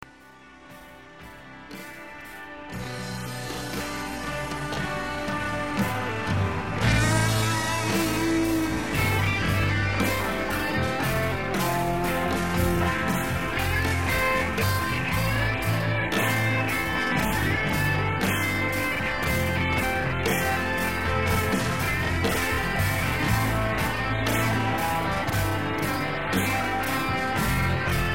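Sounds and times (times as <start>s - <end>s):
slow solo guitar: 0.1s - 28.1s.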